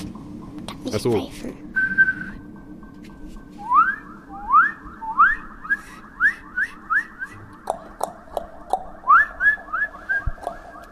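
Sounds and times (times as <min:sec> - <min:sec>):
speech: 0:00.9 - 0:01.7
person whistling short rising notes with echo effect: 0:01.7 - 0:02.4, 0:03.6 - 0:07.5, 0:09.1 - 0:10.4.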